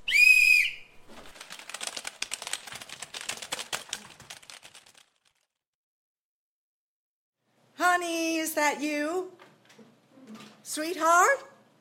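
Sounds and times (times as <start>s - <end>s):
short shrill whistle blast: 0.0s - 1.0s
many computer keys typing: 1.3s - 5.4s
speech: 8.6s - 9.4s, 10.7s - 11.5s.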